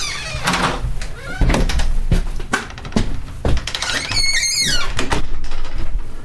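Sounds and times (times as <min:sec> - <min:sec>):
door hinges creaking: 0:00.0 - 0:05.8
door clunks and rattling: 0:00.4 - 0:04.2.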